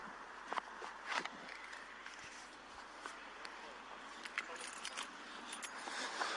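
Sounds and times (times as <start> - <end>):
steady low outdoor hum in a parking lot: 0.0 - 6.3
keys jangling in a parking lot: 4.2 - 5.8.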